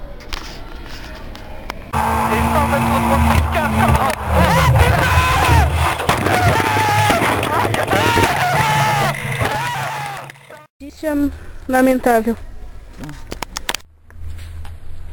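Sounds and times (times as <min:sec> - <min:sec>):
roaring engine with pitch sliding downward: 0:01.7 - 0:10.7
clattering commotion: 0:01.9 - 0:10.7
car crash sound effect: 0:02.0 - 0:10.6
people shouting: 0:02.0 - 0:10.7
speech: 0:11.0 - 0:13.2.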